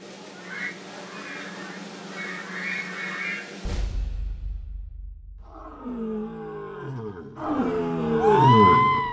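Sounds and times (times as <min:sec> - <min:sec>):
lion growling and roaring: 0:05.4 - 0:09.1.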